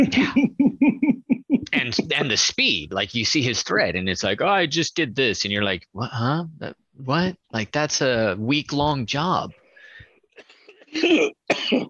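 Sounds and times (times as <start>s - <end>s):
speech: 0.0s - 0.4s, 1.9s - 9.6s, 10.9s - 11.8s
person coughing from a bug caught in the throat: 0.0s - 0.6s, 10.8s - 11.8s
laughter: 0.0s - 2.8s.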